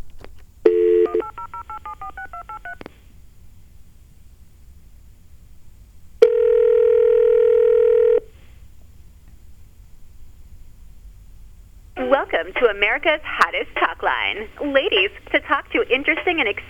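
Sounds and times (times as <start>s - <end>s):
touch-tone telephone dial tone: 0.7s - 2.8s, 6.2s - 8.3s
touch-tone telephone key beeps: 0.7s - 2.8s
speech: 12.2s - 16.6s.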